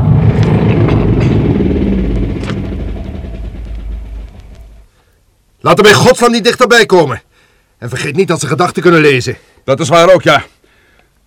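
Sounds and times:
heavy vehicle engine rumbling and winding down: 0.0 - 5.0
speech: 5.6 - 10.6.

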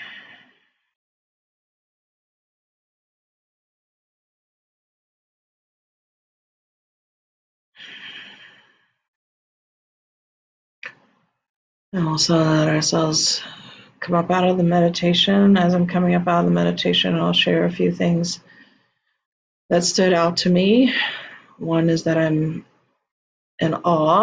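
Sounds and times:
deep inhaling and exhaling during meditation: 7.8 - 8.9
speech: 11.9 - 18.5, 19.7 - 22.7, 23.6 - 24.2.

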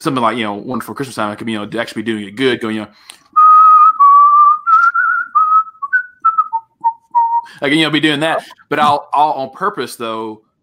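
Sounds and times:
speech: 0.0 - 3.3, 7.6 - 10.5
person whistling a Christmas melody: 3.4 - 7.6.

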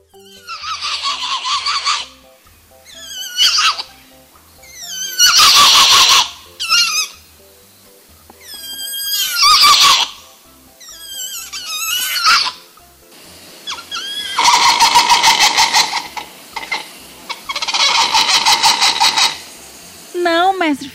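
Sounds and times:
muriqui woolly spider monkey whinnying calls: 0.0 - 2.2, 2.8 - 7.2, 8.4 - 12.7, 13.6 - 19.5.

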